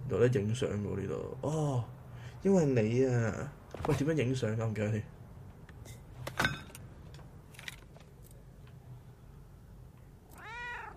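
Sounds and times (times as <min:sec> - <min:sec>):
low hum: 0:00.0 - 0:10.9
speech: 0:00.1 - 0:05.2
cat meowing: 0:10.3 - 0:10.9.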